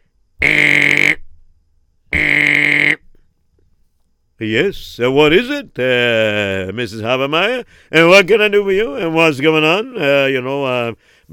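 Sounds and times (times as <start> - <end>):
harsh intercom buzz: 0.4 - 1.2, 2.1 - 3.0
speech: 4.4 - 11.3.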